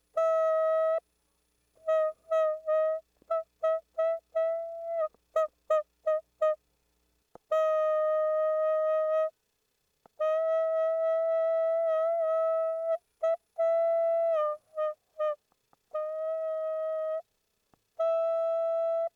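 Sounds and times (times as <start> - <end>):
clarinet: 0.0 - 1.0, 1.8 - 6.6, 7.4 - 9.4, 10.0 - 17.4, 18.0 - 19.1.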